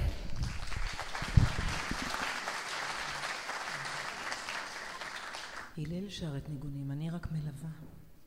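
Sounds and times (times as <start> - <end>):
sizable audience applauding: 0.0 - 5.7
speech: 5.8 - 8.0.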